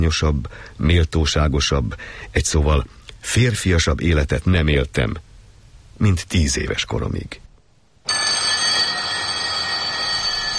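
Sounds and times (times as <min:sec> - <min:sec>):
speech: 0:00.0 - 0:05.3, 0:06.0 - 0:07.4
electric alarm bells ringing in a dormitory as a wake-up call: 0:08.1 - 0:10.5.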